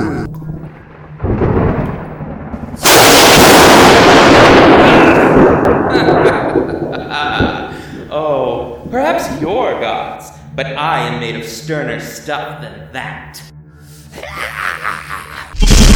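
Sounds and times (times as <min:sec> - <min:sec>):
thunderclap from a lightning strike: 0:00.0 - 0:10.0
laughter: 0:05.8 - 0:07.9, 0:14.1 - 0:15.6
speech: 0:11.0 - 0:13.6.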